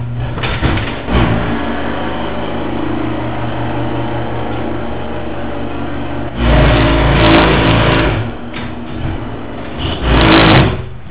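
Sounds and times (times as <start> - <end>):
stripped garage door opener gear: 0.0 - 2.3, 6.3 - 11.1
garage door moving: 0.0 - 11.1.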